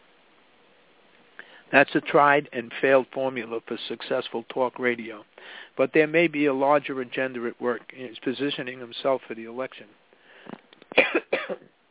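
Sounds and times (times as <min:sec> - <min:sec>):
speech: 0:01.7 - 0:10.6
talk-radio host clearing throat: 0:10.9 - 0:11.7.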